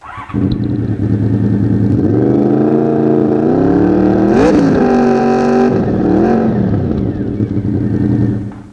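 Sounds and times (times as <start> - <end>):
motorbikes with Staintune exhausts: 0.0 - 8.7.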